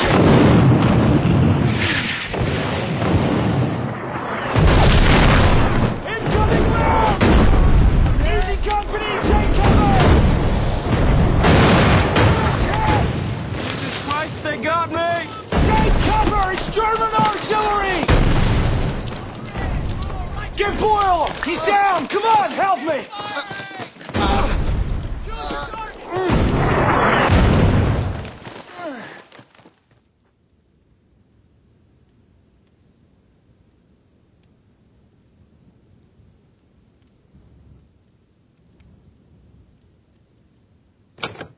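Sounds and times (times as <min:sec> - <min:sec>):
artillery rounds falling and exploding: 0:00.0 - 0:23.1, 0:24.0 - 0:28.4
voices shouting during shelling: 0:06.0 - 0:07.2, 0:08.2 - 0:10.2, 0:12.1 - 0:13.2, 0:14.1 - 0:18.1, 0:19.1 - 0:26.4.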